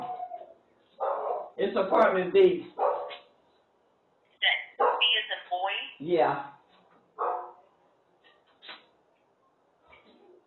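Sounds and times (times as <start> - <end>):
dog yipping: 0.0 - 1.6, 2.8 - 3.3, 4.8 - 5.1, 7.2 - 7.6
dog barking: 1.0 - 1.6, 2.8 - 3.3, 4.8 - 5.2, 7.2 - 7.7
speech: 1.6 - 2.8, 6.0 - 6.5.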